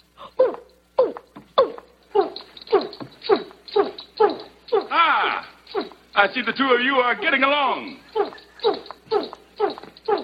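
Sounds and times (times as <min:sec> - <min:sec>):
person imitating an orangutan with loud hooting calls: 0:00.2 - 0:06.1, 0:07.2 - 0:10.2
speech: 0:06.2 - 0:08.0.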